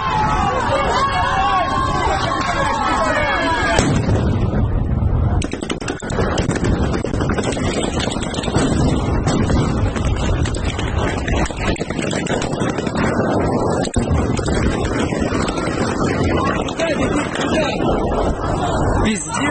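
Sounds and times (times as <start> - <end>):
protest crowd shouting: 0.0 - 3.8
wind noise: 0.0 - 19.4
gunfire at a protest: 3.8 - 4.6, 5.3 - 17.4
stun grenades exploding at a protest near a monument: 3.8 - 17.5.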